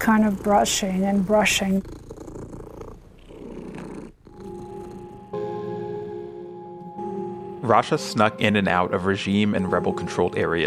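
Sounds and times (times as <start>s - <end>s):
speech: 0.0s - 2.0s, 7.7s - 10.6s
cat purring: 0.0s - 5.4s
sustained tonal sound: 4.4s - 10.6s.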